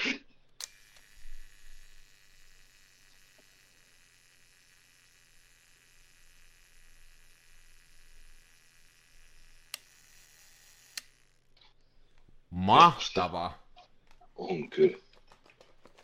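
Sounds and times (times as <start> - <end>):
mechanical camera self-timer whirring: 0.5 - 12.2
speech: 12.7 - 13.6, 14.4 - 15.0.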